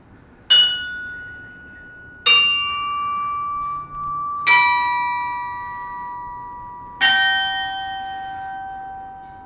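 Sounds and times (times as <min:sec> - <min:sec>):
massive tower bells tolling: 0:00.5 - 0:09.4.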